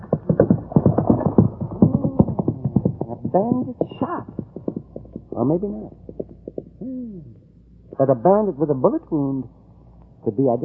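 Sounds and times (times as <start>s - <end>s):
horse hooves clip-clopping: 0.0s - 6.8s
speech: 3.4s - 4.4s, 5.4s - 6.0s, 6.8s - 7.3s, 8.0s - 9.6s, 10.2s - 10.6s.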